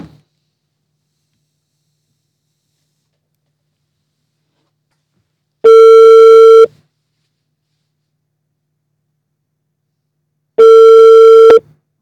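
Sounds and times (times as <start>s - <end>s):
telephone tone beeps as a call is placed: 5.7s - 6.7s, 10.6s - 11.6s.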